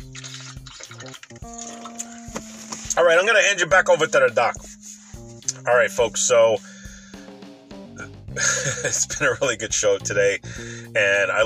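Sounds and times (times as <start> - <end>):
water pouring into a glass: 0.0 - 2.2
speech: 3.0 - 4.6, 5.6 - 6.7, 8.4 - 11.4.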